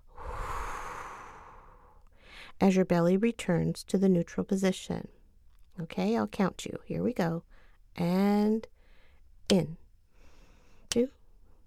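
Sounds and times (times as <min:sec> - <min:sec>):
long exhale through the mouth during a breathing exercise: 0:00.1 - 0:02.5
speech: 0:02.6 - 0:05.2, 0:05.8 - 0:08.7, 0:09.5 - 0:09.8, 0:10.9 - 0:11.2.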